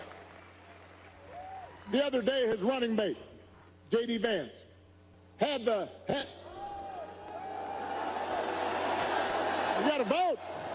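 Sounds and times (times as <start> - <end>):
speech: 1.9 - 4.6, 5.4 - 6.4, 9.8 - 10.5
large crowd at a political speech booing: 6.5 - 10.7.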